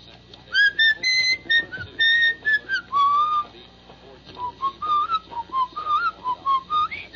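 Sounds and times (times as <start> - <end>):
person whistling an anthem: 0.6 - 3.5, 4.4 - 7.1.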